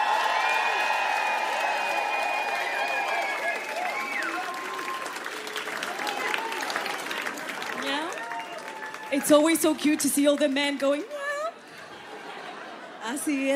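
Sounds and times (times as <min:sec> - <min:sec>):
crowd at a live comedy and music show whooping and whistling: 0:00.0 - 0:07.4, 0:08.0 - 0:09.3
crowd at a live comedy and music show clapping: 0:00.0 - 0:12.0
speech: 0:09.2 - 0:11.1, 0:13.1 - 0:13.5
laughter: 0:11.6 - 0:13.5.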